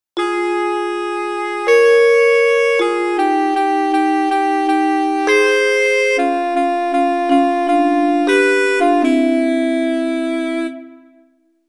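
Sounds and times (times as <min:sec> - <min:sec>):
contrapuntal music in thirds: 0:00.2 - 0:11.3.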